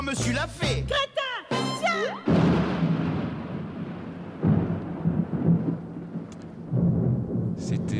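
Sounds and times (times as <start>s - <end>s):
speech: 0.1s - 1.1s
deep thunder rumbling: 2.2s - 7.9s
steady rain: 2.3s - 7.9s.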